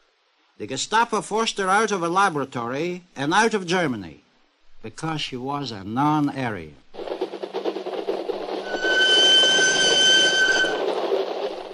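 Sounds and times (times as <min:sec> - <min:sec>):
speech: 0:00.6 - 0:04.2, 0:04.8 - 0:06.8
train rumbling along tracks with rhythmic clatter: 0:06.9 - 0:11.7.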